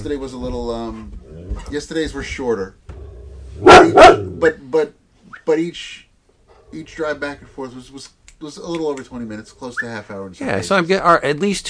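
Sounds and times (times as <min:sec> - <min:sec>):
speech: 0:00.0 - 0:02.8, 0:03.6 - 0:06.0, 0:06.7 - 0:11.6
household dogs barking and yipping: 0:03.6 - 0:04.5.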